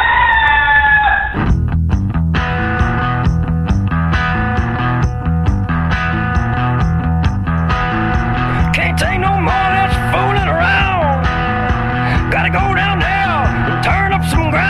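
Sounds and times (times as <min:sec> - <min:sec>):
rooster crowing: 0:00.0 - 0:01.4
rhythmic band music with strumming and steady percussion: 0:01.4 - 0:14.6.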